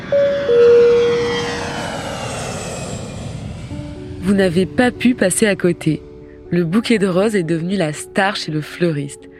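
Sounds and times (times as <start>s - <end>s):
high sustained whine of airplane taking off: 0.0s - 5.2s
airplane engine roar during takeoff: 0.0s - 8.5s
speech: 4.3s - 9.3s.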